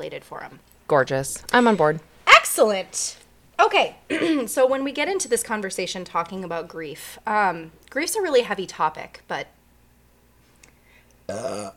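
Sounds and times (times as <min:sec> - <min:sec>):
speech: 0:00.0 - 0:09.6, 0:11.3 - 0:11.7
person burping after beer, a deep rumbling belch: 0:11.3 - 0:11.7.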